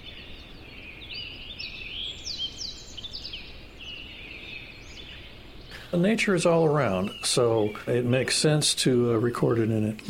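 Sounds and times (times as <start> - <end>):
dawn chorus of birds in a forest in Yosemite National Park: 0.0 - 10.0
soft steady hiss: 0.0 - 10.0
speech: 5.9 - 10.0.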